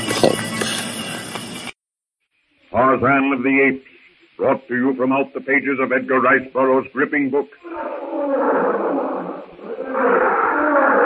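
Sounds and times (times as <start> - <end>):
speech: 0.2 - 0.5, 2.7 - 8.8, 9.9 - 10.4
loud rumbling growling animal roar: 7.6 - 11.0.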